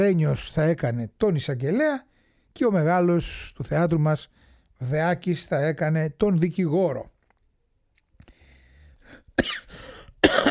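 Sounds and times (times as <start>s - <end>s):
speech: 0.0s - 7.1s, 9.4s - 9.8s
harsh coughing fit with raspy breathy hacking: 9.4s - 10.5s.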